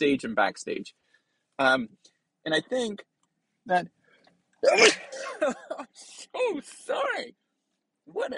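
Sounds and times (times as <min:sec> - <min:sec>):
speech: 0:00.0 - 0:01.0, 0:01.6 - 0:03.1, 0:03.7 - 0:04.0, 0:04.6 - 0:07.4, 0:08.1 - 0:08.3
short breath: 0:01.0 - 0:01.6
person sneezing: 0:04.6 - 0:06.3.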